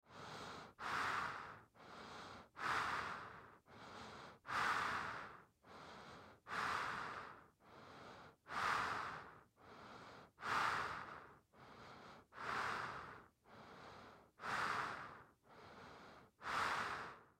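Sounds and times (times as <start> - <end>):
scary human breathing through a rubber mask: 0.0 - 17.3.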